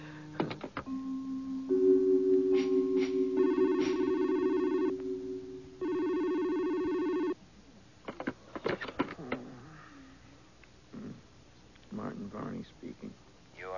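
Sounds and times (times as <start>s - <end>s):
telephone ringing with electronic trilling: 0.9s - 7.4s.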